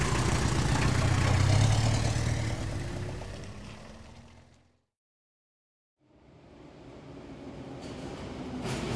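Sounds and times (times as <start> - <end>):
taxi diesel engine idling: 0.0 - 3.9.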